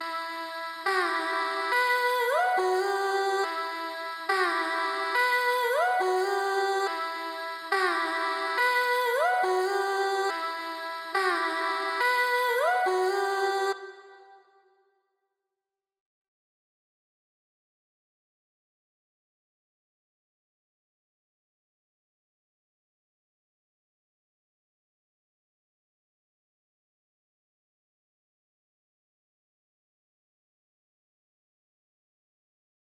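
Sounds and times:
140 BPM vocals in E minor: 0.0 - 14.8.

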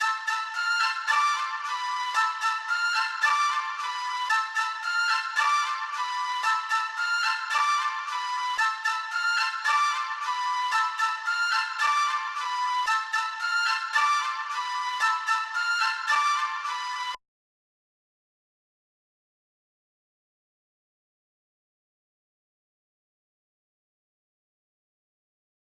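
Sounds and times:
flute in A minor: 0.0 - 17.2.

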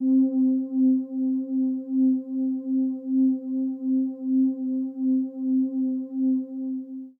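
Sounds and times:
subtle lo-fi synth pad on C: 0.0 - 7.1.

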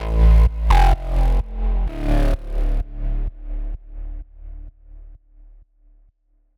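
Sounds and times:
melodic techno bass loop in A minor at 128 BPM: 0.0 - 3.1.

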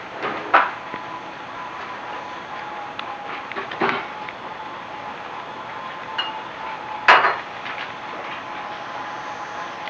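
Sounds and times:
microcassette noise: 0.0 - 9.8.

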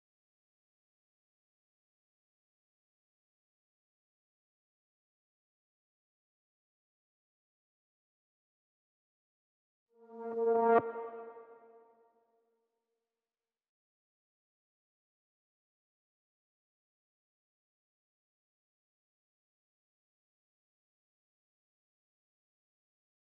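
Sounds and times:
synth riser melody in A-sharp minor: 10.0 - 11.7.

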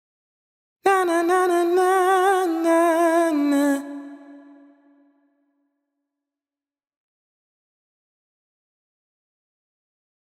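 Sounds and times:
wet vocal ad lib in F sharp minor: 0.9 - 5.3.

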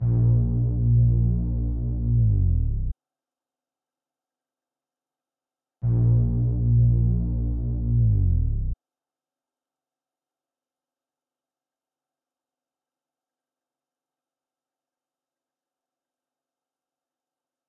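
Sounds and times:
bass melody loop: 0.0 - 2.9, 5.8 - 8.8.

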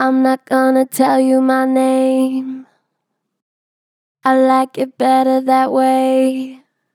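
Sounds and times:
person singing with strongly flat pitch: 0.0 - 2.7, 4.2 - 6.6.

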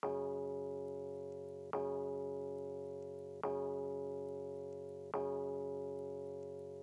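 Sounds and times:
Rhodes electric piano loop in F sharp minor: 0.0 - 6.8.

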